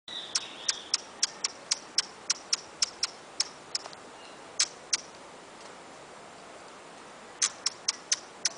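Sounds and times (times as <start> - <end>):
faint hiss: 0.1 - 8.5
hummingbird ticking: 0.3 - 4.0, 4.6 - 5.1, 7.4 - 8.5.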